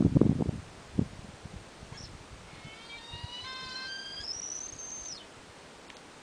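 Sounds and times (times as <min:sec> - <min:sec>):
Tahiti petrel Pseudobulweria rostrata whistling call: 0:01.9 - 0:05.3.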